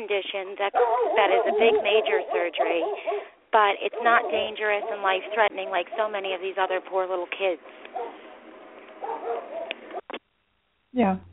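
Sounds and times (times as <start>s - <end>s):
speech: 0.0s - 8.2s, 10.9s - 11.3s
dog barking and yelping over a telephone line: 0.6s - 6.2s, 7.9s - 8.3s, 9.0s - 10.1s.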